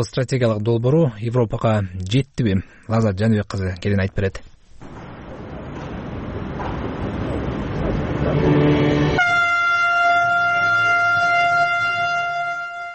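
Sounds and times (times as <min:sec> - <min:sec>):
speech: 0:00.0 - 0:04.5
freight train on a rail route from China to Serbia rumbling: 0:04.9 - 0:12.8
freight train horn blast: 0:08.2 - 0:12.9.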